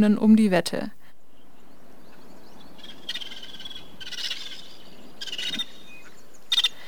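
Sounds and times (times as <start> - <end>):
speech: 0.0 - 1.0
faint outdoor background: 0.0 - 6.8
vulturine guineafowl calling: 2.1 - 6.8.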